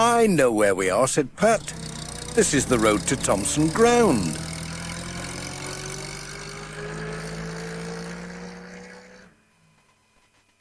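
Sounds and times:
speech: 0.0 - 1.8, 2.4 - 4.4
large bus engine idling and shutting off: 0.0 - 4.9.

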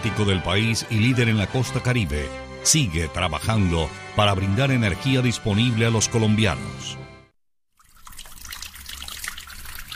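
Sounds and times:
speech: 0.0 - 7.0
water trickling from a tap: 7.7 - 9.9.

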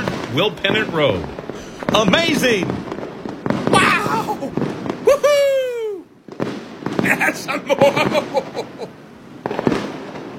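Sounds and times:
fireworks exploding: 0.0 - 10.3
speech: 0.3 - 2.8, 7.2 - 9.0
laughter: 4.0 - 5.8, 7.1 - 8.9.

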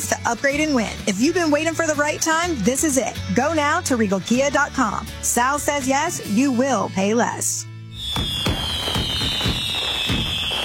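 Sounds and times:
speech: 0.2 - 8.6
continuous high-pitched whistle: 8.0 - 10.6
fireworks bursts cracking and booming: 8.0 - 10.6.

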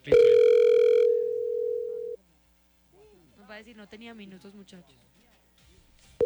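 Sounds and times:
phone call ringing unanswered: 0.0 - 2.2
speech: 3.7 - 5.3.

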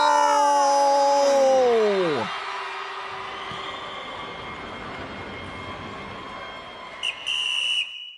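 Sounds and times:
steady dense roar at a football match: 0.0 - 5.2
referee's halftime whistle blowing at a football match: 7.0 - 8.1.

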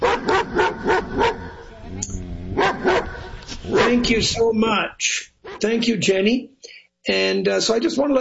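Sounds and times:
Labrador Retriever, Poodle and German Shepherd barking: 0.0 - 1.7, 2.6 - 4.1
speech: 4.0 - 8.1.

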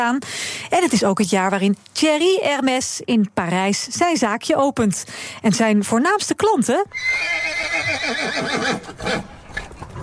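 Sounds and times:
speech: 0.0 - 9.3
horse neighing: 6.9 - 9.4
horse snorting and breathing: 7.2 - 10.0.

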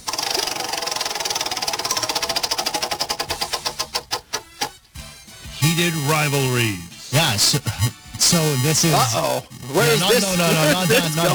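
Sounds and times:
wheel of topics spinning with ratchet clicks: 0.0 - 4.8
speech: 5.7 - 11.3
laughter: 9.8 - 11.3.

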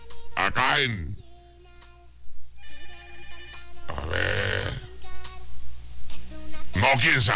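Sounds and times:
speech: 0.5 - 1.1, 6.9 - 7.3
telephone ringing with an electronic melodic ringtone: 2.6 - 4.1.

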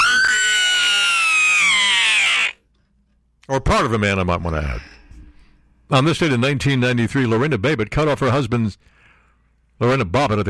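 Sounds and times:
man screaming: 0.0 - 2.6
speech: 3.5 - 5.0, 5.9 - 8.9, 9.8 - 10.4.

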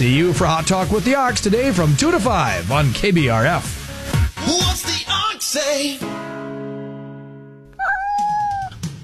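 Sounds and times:
speech: 0.0 - 4.9, 5.5 - 6.4
cat meowing: 7.8 - 8.8.

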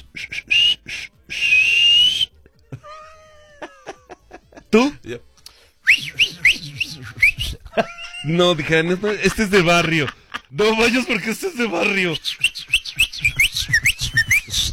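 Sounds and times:
person whistling imitating a male dolphin call: 0.0 - 2.4, 5.8 - 7.7, 11.8 - 14.7
laughter: 2.3 - 4.8, 6.2 - 11.4
speech: 4.7 - 5.3, 7.8 - 12.4.

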